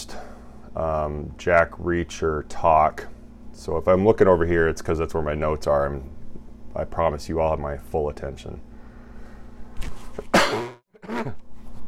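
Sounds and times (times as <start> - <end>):
speech: 0.0 - 6.2, 6.8 - 8.7
low steady hum: 0.0 - 11.8
person coughing: 10.2 - 11.4.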